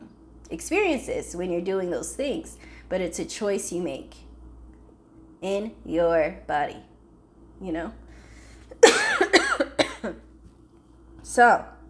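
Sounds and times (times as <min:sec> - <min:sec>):
speech: 0:00.5 - 0:04.2, 0:05.4 - 0:06.9, 0:07.6 - 0:08.0, 0:10.0 - 0:10.2, 0:11.4 - 0:11.7
harsh raspy coughing: 0:08.8 - 0:10.2.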